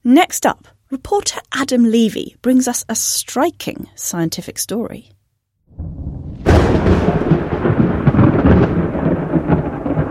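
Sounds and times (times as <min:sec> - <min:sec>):
speech: 0:00.0 - 0:05.2
thunder crack and rumble in a thunderstorm: 0:05.7 - 0:10.1.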